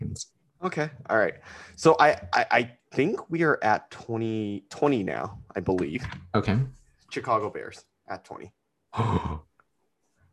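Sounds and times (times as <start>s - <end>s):
speech: 0.2s - 9.5s
person gasping: 9.0s - 9.4s.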